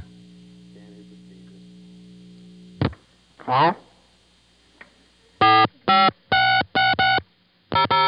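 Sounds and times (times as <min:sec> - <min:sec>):
steady electrical hum: 0:00.0 - 0:08.0.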